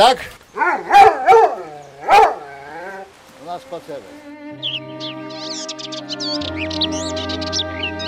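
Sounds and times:
speech: 0.0 - 2.2, 3.5 - 7.8
dog bark-howling before a walk: 0.6 - 3.1.

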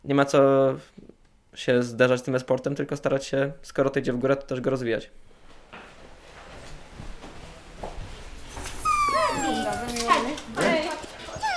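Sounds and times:
speech: 0.0 - 1.0, 1.6 - 5.3
low murmur of noise: 7.0 - 11.5
dog whimpering and yipping: 8.7 - 10.5, 11.3 - 11.5.

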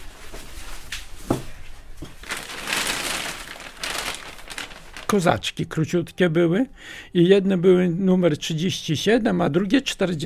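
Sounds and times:
plastic shopping bag crinkling and rustling: 2.1 - 5.4
speech: 5.1 - 10.2.

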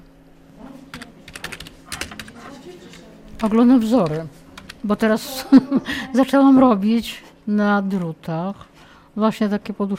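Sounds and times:
typing on a computer keyboard: 0.9 - 2.5, 3.4 - 4.9
speech: 3.4 - 9.9.

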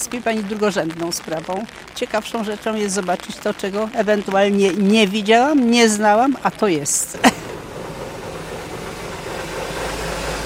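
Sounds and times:
speech: 0.0 - 7.4
constant hiss: 0.0 - 10.4
bus engine idling before boarding on a rainy day: 7.1 - 10.4.

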